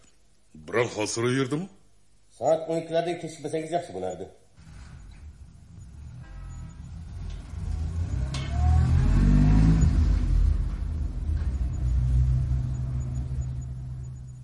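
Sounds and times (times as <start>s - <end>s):
speech: 0.6s - 1.8s, 2.4s - 4.4s
light car engine revving speeding out of a yard: 4.6s - 14.4s.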